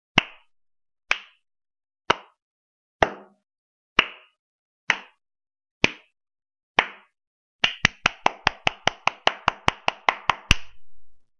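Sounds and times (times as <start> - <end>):
hand clap: 0.1 - 0.5, 1.1 - 1.4, 2.1 - 2.4, 4.0 - 5.2, 5.8 - 6.2, 6.8 - 10.8.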